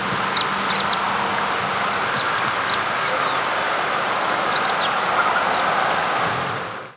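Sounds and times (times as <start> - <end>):
American pipit calling: 0.0 - 3.7, 4.3 - 6.1
broad rushing noise: 0.0 - 6.9.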